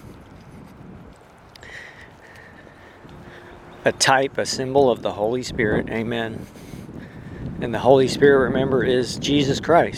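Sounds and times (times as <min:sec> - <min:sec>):
strong wind blowing hard: 0:00.0 - 0:09.9
speech: 0:03.8 - 0:06.7, 0:07.6 - 0:09.9.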